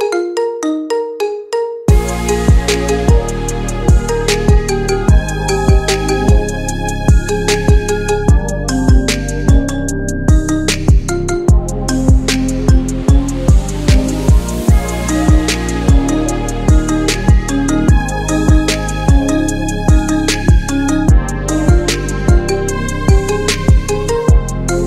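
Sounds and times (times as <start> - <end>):
marimba remix: 0.0 - 24.8.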